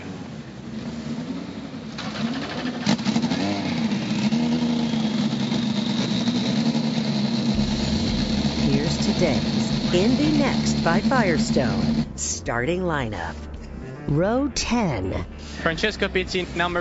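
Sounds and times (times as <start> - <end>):
field of race car engines starting and revving at a grand prix: 0.0 - 12.4
speech: 9.2 - 13.5, 14.1 - 16.7.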